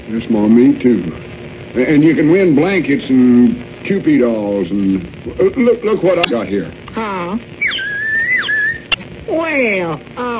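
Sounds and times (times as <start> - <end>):
speech: 0.1 - 7.6, 9.4 - 10.3
bird-call whistle being blown: 7.6 - 9.0.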